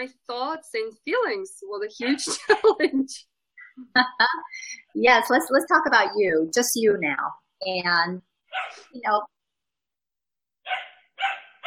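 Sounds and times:
speech: 0.0 - 9.4
small puppy barking behind two closed doors: 8.5 - 8.9, 10.7 - 11.6.

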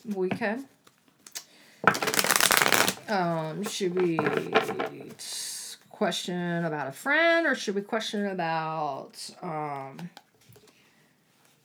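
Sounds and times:
speech: 0.0 - 0.8, 3.1 - 10.2
deck of cards shuffled for a card reading: 1.3 - 3.2.

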